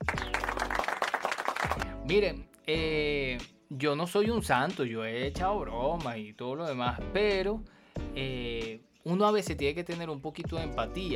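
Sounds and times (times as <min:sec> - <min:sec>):
dense burst of many hands clapping: 0:00.0 - 0:02.0
speech: 0:02.1 - 0:11.1.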